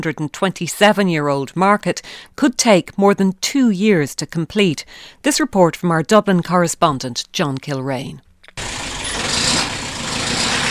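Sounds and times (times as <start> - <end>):
speech: 0.0 - 8.7
Bedford truck engine rumbling at a market early morning: 8.6 - 10.6.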